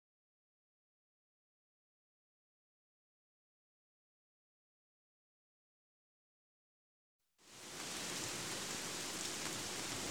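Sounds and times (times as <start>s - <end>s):
heavy rain: 7.4s - 10.1s.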